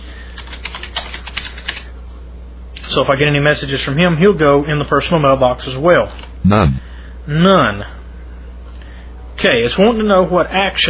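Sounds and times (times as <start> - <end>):
typing a name on a computer keyboard: 0.4 - 1.9
speech: 2.9 - 8.0, 9.4 - 10.8.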